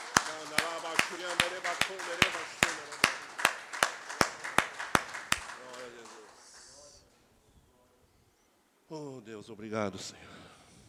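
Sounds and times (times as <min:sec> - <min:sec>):
church congregation clapping in a steady rhythm: 0:00.0 - 0:06.9
speech: 0:09.3 - 0:10.4.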